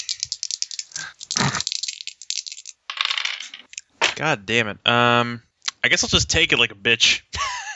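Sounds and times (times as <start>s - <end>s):
dice rattling across a hard surface: 0.0s - 3.8s
speech: 4.2s - 7.4s.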